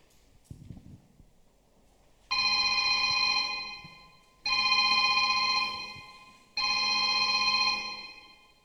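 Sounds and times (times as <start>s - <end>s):
telephone ringing with electronic trill: 2.3s - 8.6s.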